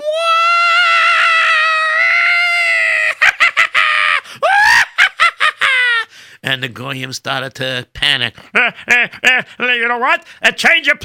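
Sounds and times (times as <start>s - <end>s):
group of young men screaming: 0.0s - 6.1s
laughter: 3.0s - 6.1s, 8.6s - 9.5s
speech: 6.5s - 11.0s.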